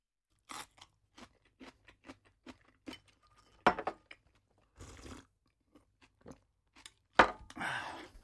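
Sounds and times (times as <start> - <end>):
person chewing and crunching Japanese food at a home dinner in an apartment: 0.3 - 3.6, 4.2 - 7.2.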